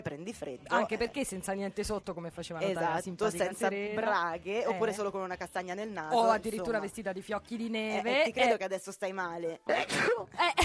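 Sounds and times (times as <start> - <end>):
speech: 0.0 - 10.6
loud theatrical sneeze: 9.7 - 10.3.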